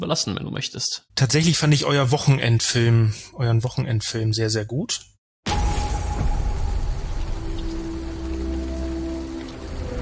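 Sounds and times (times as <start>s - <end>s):
speech: 0.0s - 5.6s
steady rain in late-May weather in a small village in the Eifel: 5.5s - 10.0s.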